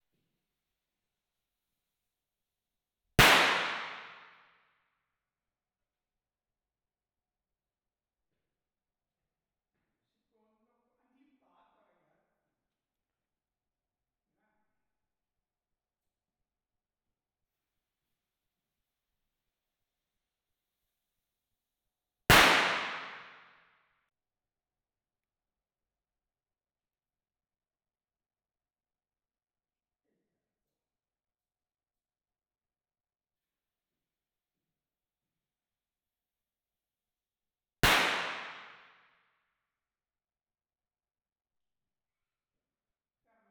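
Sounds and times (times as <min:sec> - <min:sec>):
firecrackers recorded binaurally on Zoom H1: 0:03.2 - 0:04.4, 0:22.3 - 0:23.5, 0:37.8 - 0:38.9.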